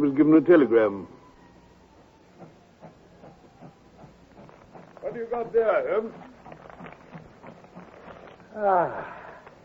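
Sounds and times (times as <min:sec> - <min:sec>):
speech: 0:00.0 - 0:01.2, 0:05.1 - 0:06.4, 0:08.6 - 0:09.2
steam train chuffing at a railway station: 0:01.8 - 0:08.4
constant hiss of steam: 0:02.0 - 0:09.6.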